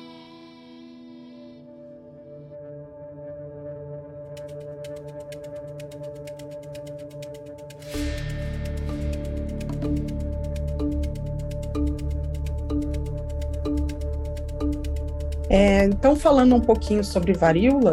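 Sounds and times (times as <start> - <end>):
short instrumental podcast intro jingle: 8.0 - 17.9
speech: 15.5 - 17.9.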